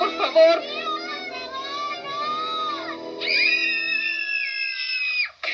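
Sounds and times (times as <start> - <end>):
children playing and shouting: 0.0 - 5.4
children shrieking and squealing: 2.1 - 5.4.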